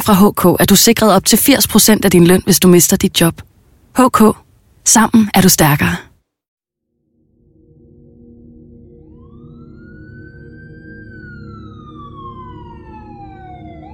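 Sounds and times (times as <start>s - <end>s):
speech: 0.0s - 6.1s
emergency vehicle siren wailing in Vesterbro Copenhagen Denmark: 8.6s - 13.9s.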